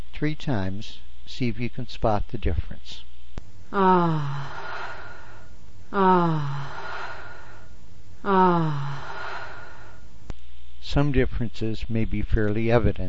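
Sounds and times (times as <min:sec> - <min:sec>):
speech: 0:00.2 - 0:03.1, 0:03.7 - 0:04.6, 0:05.9 - 0:06.8, 0:08.2 - 0:09.1, 0:10.8 - 0:13.0
woman's breathy voiced ah exhale: 0:03.7 - 0:10.0.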